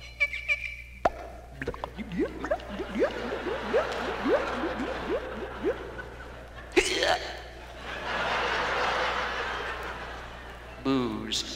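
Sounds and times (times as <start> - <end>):
voice imitating a cork popping from a bottle: 1.0 - 5.8
voice making bubbly gurgles like water glugging: 1.5 - 6.1
laughter: 2.5 - 11.4.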